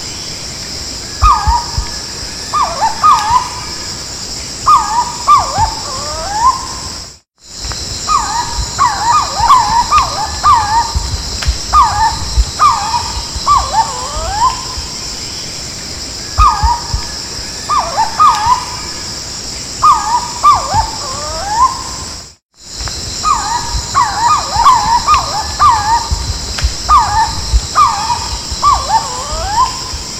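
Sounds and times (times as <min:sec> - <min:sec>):
high insect hum: 0:00.0 - 0:30.1
Purple-throated fruitcrow giving soft whistled calls: 0:01.2 - 0:03.8, 0:04.7 - 0:06.8, 0:08.0 - 0:14.9, 0:16.4 - 0:18.9, 0:23.2 - 0:30.1.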